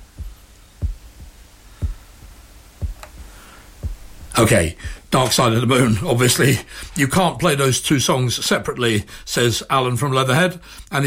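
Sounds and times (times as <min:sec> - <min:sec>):
deep heartbeat sound effect in a rock song: 0:00.0 - 0:05.2
faint hiss: 0:00.0 - 0:11.0
speech: 0:04.4 - 0:11.0.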